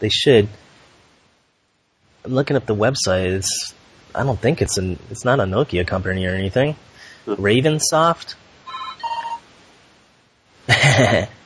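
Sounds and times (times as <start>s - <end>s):
speech: 0.0s - 0.6s, 2.3s - 8.4s, 10.7s - 11.4s
loud rough burst of noise: 0.0s - 11.4s
electronic phone ring warbling tone: 8.7s - 9.5s.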